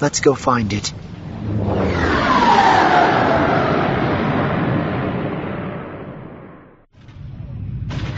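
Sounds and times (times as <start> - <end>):
speech: 0.0 - 2.2
skip-ray blast boats roaring past with a falling whine: 1.0 - 6.6.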